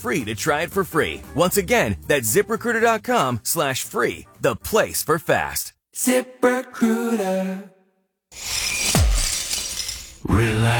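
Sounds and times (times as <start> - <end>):
speech: 0.0 - 7.7, 8.3 - 8.7, 10.2 - 10.7
glass cracking and shattering: 8.4 - 10.2
scattering tinkling glass debris: 8.4 - 10.2.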